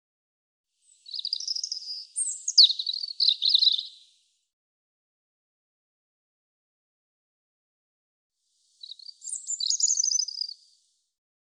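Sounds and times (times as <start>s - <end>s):
European robin giving high twittering phrase and trill: 0.8s - 4.1s, 8.8s - 10.6s.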